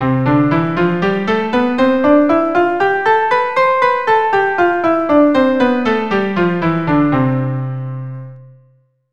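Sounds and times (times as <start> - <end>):
keyboard playing in C major: 0.0 - 8.4.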